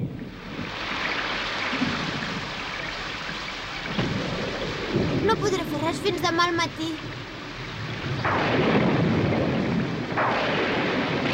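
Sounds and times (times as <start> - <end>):
steady heavy rain: 0.0 - 11.3
low storm rumbles: 1.6 - 11.3
speech: 5.3 - 7.2.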